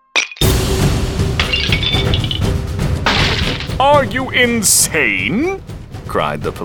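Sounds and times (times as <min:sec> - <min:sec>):
crumbling, rattling plaster debris: 0:01.3 - 0:04.2
police baton smashing a meter-high plaster angel statue in a chapel: 0:01.4 - 0:03.8
speech: 0:03.8 - 0:06.6.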